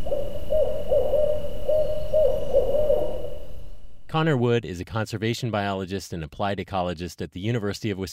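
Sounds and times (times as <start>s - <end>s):
barred owl hooting: 0.0s - 4.0s
steady low hiss: 0.0s - 8.1s
speech: 4.1s - 8.1s.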